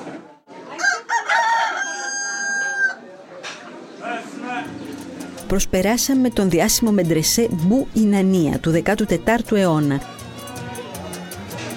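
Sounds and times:
chickens clucking and squawking at a market in Fez: 0:00.0 - 0:05.4
bustle of a busy market in Fez: 0:00.0 - 0:11.7
rooster crowing at a market in Fez: 0:00.7 - 0:03.1
speech: 0:05.5 - 0:10.2.

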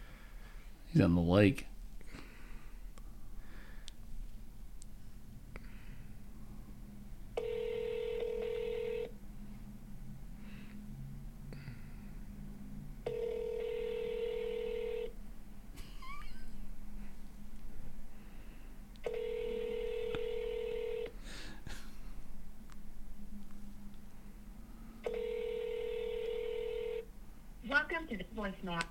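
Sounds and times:
faint noise: 0:00.0 - 0:28.8
speech: 0:01.0 - 0:01.7
outgoing phone call line tone over a speaker: 0:07.4 - 0:09.1, 0:13.1 - 0:15.1, 0:19.0 - 0:21.1, 0:25.0 - 0:27.1.

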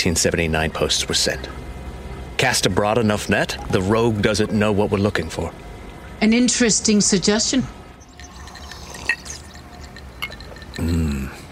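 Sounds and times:
speech: 0:00.0 - 0:01.7, 0:02.4 - 0:07.8
liquid pouring into a glass while mixing an old-fashioned cocktail: 0:08.0 - 0:11.1
small clinks: 0:08.0 - 0:11.5.

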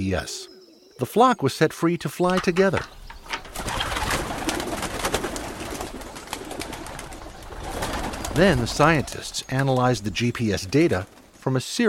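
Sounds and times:
speech: 0:00.0 - 0:03.0, 0:08.4 - 0:11.8
clicks: 0:02.2 - 0:03.6
fluttering rustles: 0:02.3 - 0:11.6
flock of homing pigeons cooing: 0:02.4 - 0:11.4.

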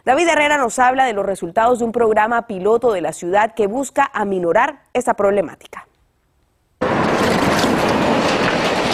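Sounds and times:
speech: 0:00.0 - 0:05.9
train roaring past on railroad tracks: 0:06.8 - 0:08.9
train wheels clattering on the rails: 0:06.8 - 0:08.9.

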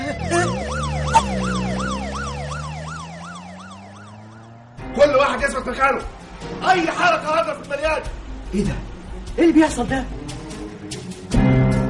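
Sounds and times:
police car siren wailing: 0:00.0 - 0:04.9
speech: 0:05.1 - 0:10.2.

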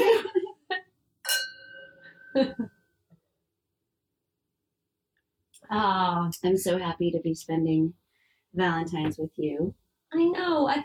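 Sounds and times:
two wine glasses clinking in a toast: 0:01.2 - 0:02.6
speech: 0:02.4 - 0:02.8, 0:05.7 - 0:10.8.

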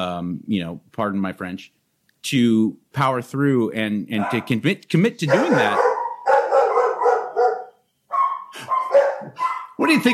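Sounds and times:
speech: 0:00.0 - 0:05.9, 0:09.8 - 0:10.1
dogs barking at arriving neighbor: 0:04.2 - 0:04.6, 0:05.3 - 0:09.8.

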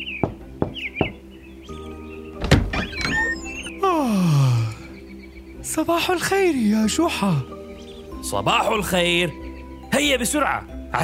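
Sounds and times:
sharp knocking on a door: 0:00.2 - 0:01.2
heavy door opening clunk: 0:02.4 - 0:03.5
door creaking downward in pitch: 0:02.4 - 0:03.8
speech: 0:05.8 - 0:07.6, 0:08.3 - 0:11.0.

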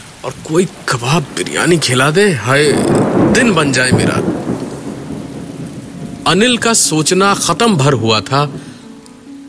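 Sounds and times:
steady heavy rain: 0:00.0 - 0:09.4
speech: 0:00.2 - 0:04.3, 0:06.3 - 0:08.7
low rolling thunder rumble: 0:00.3 - 0:08.9.

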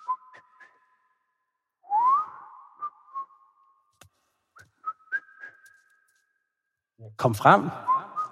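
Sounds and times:
faint distant whistling: 0:00.0 - 0:03.8, 0:04.6 - 0:06.4
speech: 0:07.1 - 0:07.9.

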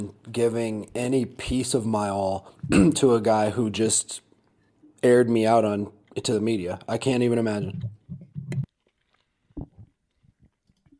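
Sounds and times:
speech: 0:00.0 - 0:04.3, 0:05.0 - 0:08.0
chewing food: 0:08.0 - 0:10.9.

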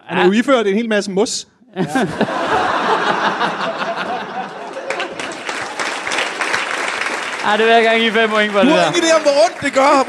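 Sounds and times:
speech: 0:00.1 - 0:02.5, 0:07.4 - 0:10.0
scattered chuckles and laughter: 0:01.8 - 0:06.1, 0:08.0 - 0:10.0
group clapping: 0:02.5 - 0:10.0.

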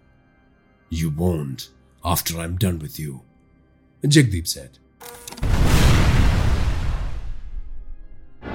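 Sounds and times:
speech: 0:00.9 - 0:03.3, 0:04.0 - 0:04.8
distant explosion booming into a long rumble: 0:05.4 - 0:08.4
roaring crackling blast noise: 0:05.4 - 0:08.4.

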